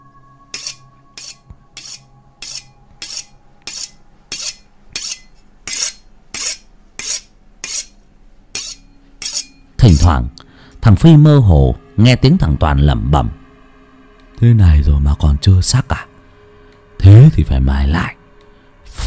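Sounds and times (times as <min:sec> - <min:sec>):
faint low hum: 0:00.0 - 0:19.0
knife being sharpened on a whetstone in a dark room: 0:00.5 - 0:08.0, 0:08.6 - 0:09.6
speech: 0:09.8 - 0:13.4, 0:14.4 - 0:15.8, 0:17.1 - 0:18.2.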